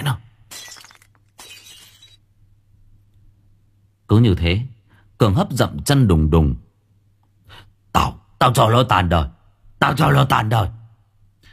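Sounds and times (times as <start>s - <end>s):
low noise: 0.0s - 11.5s
glass beer bottle smashed down and shattering: 0.5s - 2.2s
speech: 4.1s - 6.7s, 7.5s - 10.8s.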